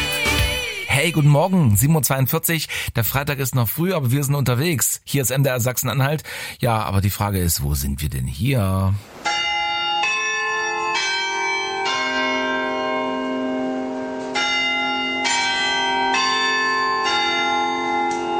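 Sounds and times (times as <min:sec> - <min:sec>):
speech: 0:01.0 - 0:09.4
clock chime rung on tower bells above a market square: 0:09.3 - 0:18.3.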